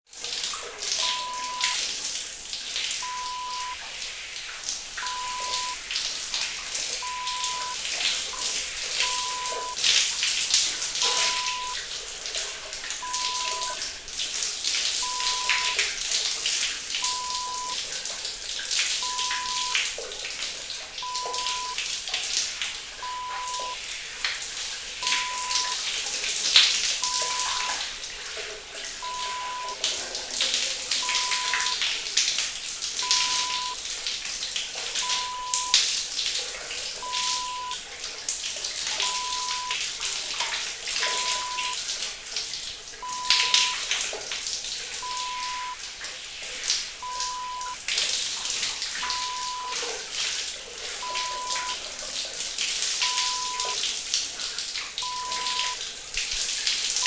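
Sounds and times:
person taking a shower: 0.1s - 57.0s.

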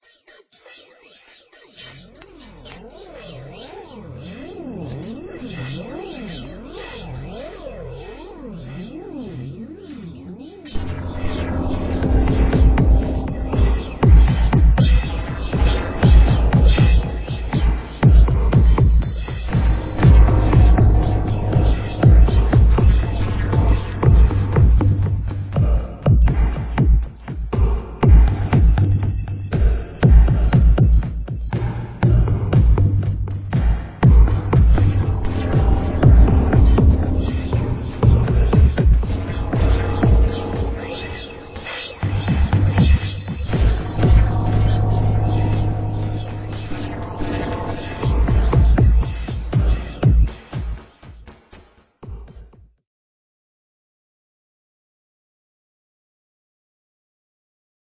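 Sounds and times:
industrial sound: 10.7s - 50.8s.

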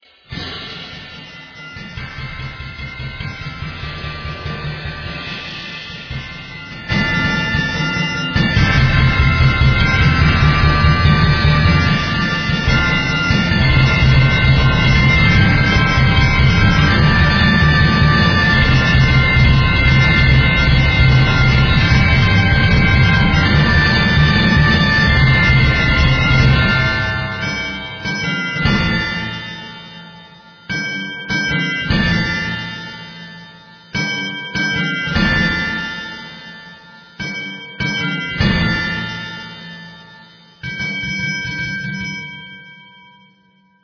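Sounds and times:
manic percussion: 0.0s - 42.7s.

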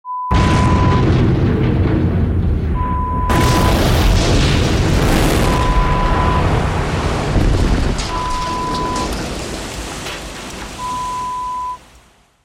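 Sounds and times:
explosion: 0.3s - 11.4s.

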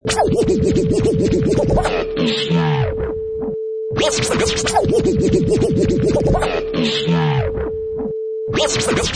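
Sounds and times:
vinyl scratching: 0.0s - 3.1s, 4.0s - 7.7s, 8.5s - 9.1s.

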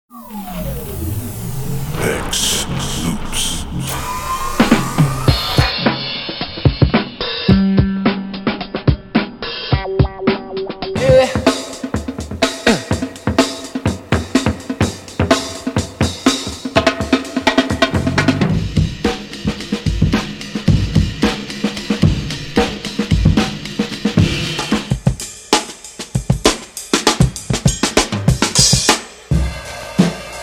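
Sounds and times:
old-school drums sample: 1.9s - 30.4s.

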